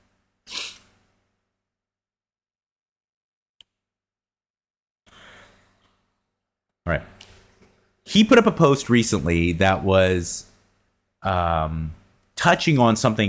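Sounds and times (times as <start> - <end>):
stifled sneeze: 0.5 - 0.9
speech: 6.9 - 7.1, 8.1 - 10.5, 11.2 - 13.2.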